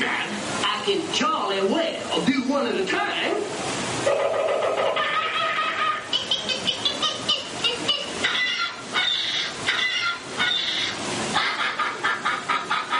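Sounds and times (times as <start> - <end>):
speech: 0.9 - 5.1
laughter: 4.0 - 8.2, 11.3 - 12.9
human voice imitating squawking outraged birds: 6.0 - 11.5.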